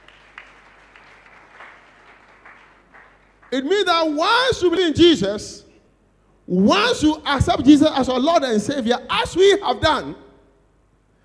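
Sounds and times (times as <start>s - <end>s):
audience clapping hands: 0.0s - 3.8s
speech: 3.5s - 5.6s, 6.5s - 10.2s.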